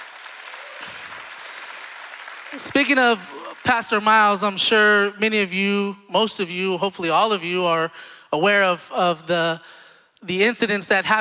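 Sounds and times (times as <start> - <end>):
church congregation applauding: 0.0 - 4.4
speech: 2.5 - 11.2.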